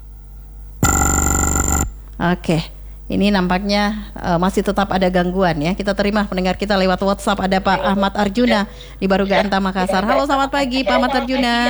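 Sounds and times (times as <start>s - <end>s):
telephone line ringing during a radio call-in attempt: 0.8s - 2.0s
speech: 2.2s - 11.6s
laughter: 7.4s - 11.6s.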